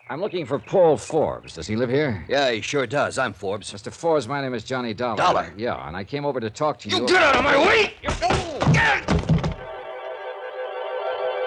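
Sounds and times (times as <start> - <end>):
speech: 0.1 - 9.3
gun striking a man's head in heavy thumping blows: 7.3 - 9.7
sustained musical chord: 9.7 - 11.4.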